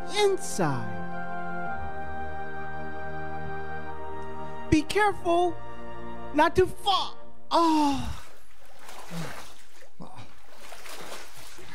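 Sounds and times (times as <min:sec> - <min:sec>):
speech: 0:00.1 - 0:01.0, 0:04.7 - 0:05.7, 0:06.3 - 0:08.2, 0:09.1 - 0:09.4
fox jumping into cold water: 0:08.0 - 0:11.7.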